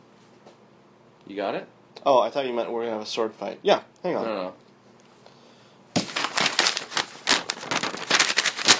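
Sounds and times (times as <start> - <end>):
speech: 1.3 - 4.6
paper crinkling and rustling: 6.0 - 8.7.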